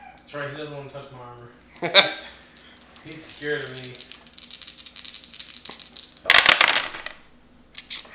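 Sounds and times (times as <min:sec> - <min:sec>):
speech: 0:00.3 - 0:02.4, 0:03.0 - 0:04.0
dice rattling and clattering across a hard surface: 0:02.5 - 0:07.2.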